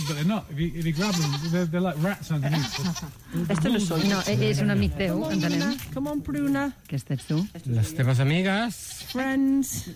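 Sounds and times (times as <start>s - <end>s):
goats bleating: 0.0s - 6.2s, 7.2s - 9.9s
speech: 0.1s - 9.9s.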